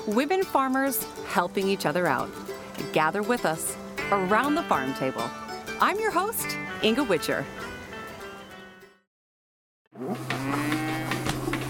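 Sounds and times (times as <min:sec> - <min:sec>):
speech: 0:00.0 - 0:07.6
cow mooing: 0:10.0 - 0:11.4.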